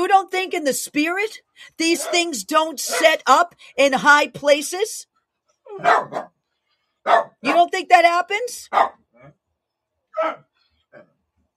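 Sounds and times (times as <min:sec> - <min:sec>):
speech: 0:00.2 - 0:05.1, 0:05.8 - 0:06.4, 0:07.0 - 0:09.4, 0:10.2 - 0:11.1
dog barking: 0:05.7 - 0:06.4, 0:07.0 - 0:07.6, 0:08.7 - 0:09.0.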